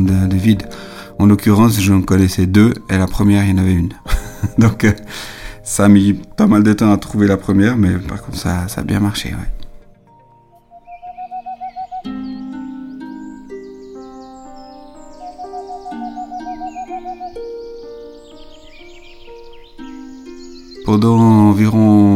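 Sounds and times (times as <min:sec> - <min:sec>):
speech: 0:00.0 - 0:09.6, 0:20.9 - 0:22.1
sustained melodic tones: 0:00.0 - 0:22.1
laughter: 0:04.1 - 0:05.2
Tengmalm's owl hooting in rapid trills: 0:10.7 - 0:14.2, 0:15.1 - 0:17.5.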